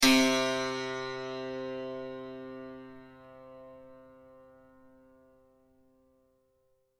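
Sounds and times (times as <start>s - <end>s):
santur playing the note mi: 0.0s - 5.5s.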